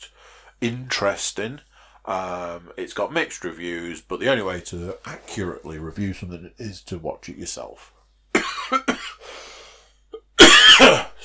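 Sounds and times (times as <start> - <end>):
speech: 0.6 - 8.0, 8.7 - 9.2
harsh hacking coughing: 8.4 - 9.2, 10.2 - 11.2
raspy wheezing breath: 9.2 - 10.1.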